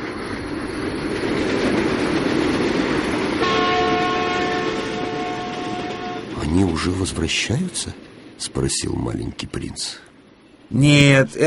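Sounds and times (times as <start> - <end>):
express train roaring past: 0.0 - 11.4
train horn: 3.4 - 6.4
speech: 6.6 - 10.1, 10.7 - 11.4.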